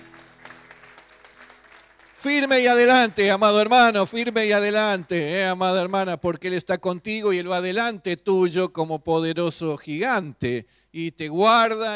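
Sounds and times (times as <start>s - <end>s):
congregation clapping during a church service: 0.0s - 5.1s
speech: 2.2s - 11.9s.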